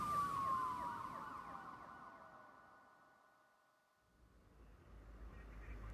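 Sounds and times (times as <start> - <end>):
emergency vehicle siren wailing on a road: 0.0 - 2.8.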